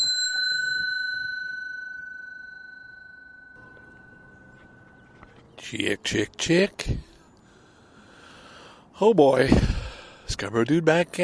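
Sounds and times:
bell ringing: 0:00.0 - 0:05.4
speech: 0:05.7 - 0:07.1, 0:09.0 - 0:09.7, 0:10.4 - 0:11.2.

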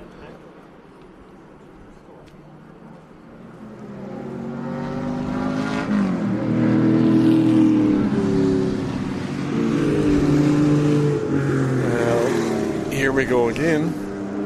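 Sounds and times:
Volvo P1800 classic race car engine revving: 0:03.6 - 0:14.4.

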